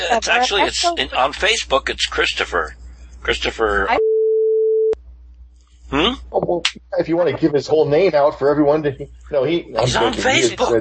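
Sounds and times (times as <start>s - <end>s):
speech: 0.1s - 4.1s, 5.9s - 10.7s
steady mid-pitched censor beep over a spoken last name: 4.0s - 5.0s.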